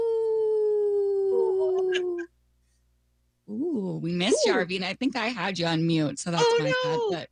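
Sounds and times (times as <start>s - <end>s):
person imitating a wolf howl: 0.0s - 2.3s
speech: 4.0s - 7.3s.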